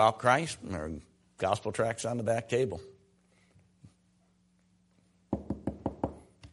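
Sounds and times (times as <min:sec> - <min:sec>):
speech: 0:00.0 - 0:03.0
firm knocking on a wooden door: 0:05.3 - 0:06.2.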